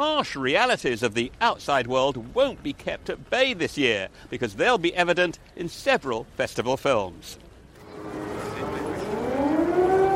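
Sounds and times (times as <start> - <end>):
speech: 0.0 - 7.4
ambient noise: 0.1 - 10.1
air raid siren wailing in Kyiv during a funeral: 7.9 - 10.1.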